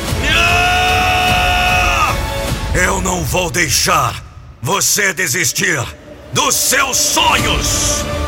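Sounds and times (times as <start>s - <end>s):
person yelling loudly with a strained voice: 0.2s - 3.0s
speech: 3.2s - 8.1s.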